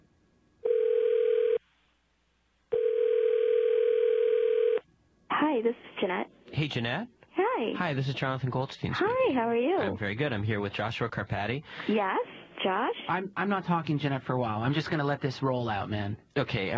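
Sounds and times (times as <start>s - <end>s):
telephone ringing tones: 0.6s - 1.6s, 2.7s - 4.8s
speech: 5.6s - 16.7s.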